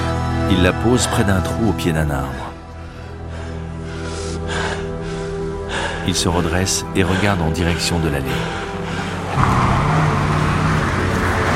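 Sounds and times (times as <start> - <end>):
speech: 0.5 - 2.5, 6.1 - 8.7
car and police vehicle engines rumbling while pulling up at a house: 4.5 - 11.5.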